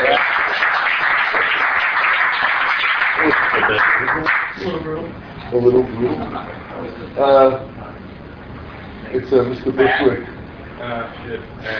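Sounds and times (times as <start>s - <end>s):
crowd applauding: 0.0s - 4.7s
speech: 5.5s - 7.7s, 9.1s - 11.7s.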